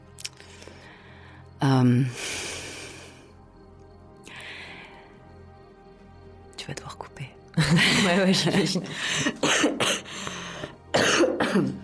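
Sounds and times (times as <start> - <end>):
speech: 1.6 - 2.5, 7.7 - 9.5
person coughing harshly: 9.2 - 10.2, 10.9 - 11.8.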